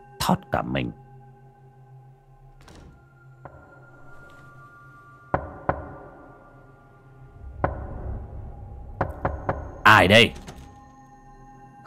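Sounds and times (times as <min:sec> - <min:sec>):
speech: 0:00.3 - 0:01.0, 0:09.9 - 0:10.4
knocking on a door: 0:05.3 - 0:06.2, 0:07.6 - 0:08.0, 0:09.0 - 0:10.8.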